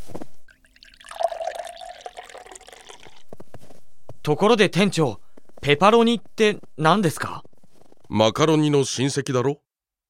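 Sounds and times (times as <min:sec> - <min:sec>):
hot water poured into flour for pizza dough: 0:00.5 - 0:03.2
speech: 0:04.2 - 0:07.4, 0:08.1 - 0:09.6.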